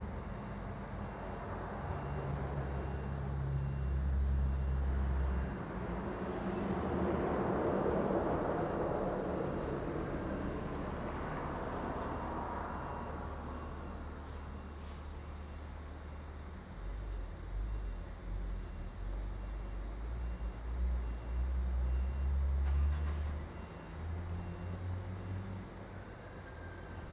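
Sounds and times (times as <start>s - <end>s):
cars on the road by a petrol station: 0.0s - 27.1s
truck reversing alarm: 0.0s - 27.1s.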